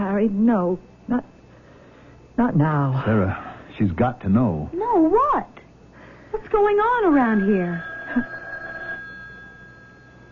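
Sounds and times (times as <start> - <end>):
speech: 0.2 - 1.4, 2.4 - 5.6, 6.3 - 8.4
telephone bell ringing: 7.0 - 10.3.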